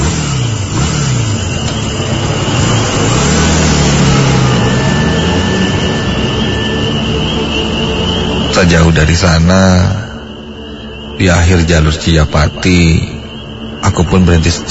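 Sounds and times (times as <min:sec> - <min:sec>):
motorcycle accelerating away with rider revving the throttle: 0:00.0 - 0:08.6
speech: 0:08.6 - 0:10.0, 0:11.2 - 0:13.1, 0:13.9 - 0:14.6.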